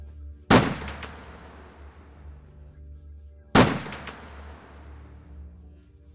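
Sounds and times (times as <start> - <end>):
low steady hum: 0.0 - 6.1
gunshots echoing across a valley: 0.5 - 2.3, 3.6 - 5.3.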